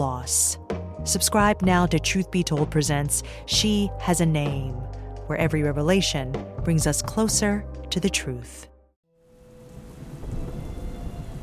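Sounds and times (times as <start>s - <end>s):
speech: 0.2s - 8.7s
torrential rain pouring: 9.2s - 11.4s
deep thunder rumbling: 9.4s - 11.4s.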